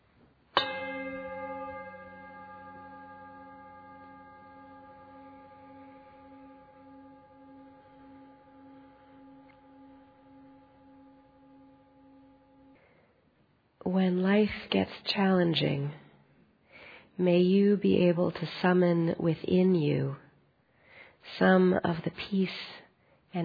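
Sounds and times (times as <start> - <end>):
meditation bell struck during a religious service: 0.0 - 13.2
speech: 13.9 - 16.0, 17.2 - 20.2, 21.2 - 23.4.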